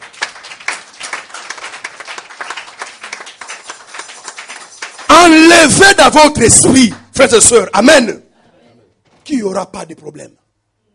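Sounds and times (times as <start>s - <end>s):
church congregation clapping in acclaim of the Lord during a worship service: 0.0s - 7.5s
speech: 5.6s - 8.2s, 9.4s - 10.4s.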